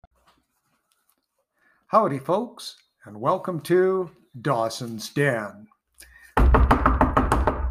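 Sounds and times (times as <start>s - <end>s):
speech: 1.9s - 5.7s
firm knocking on a wooden door: 6.4s - 7.6s.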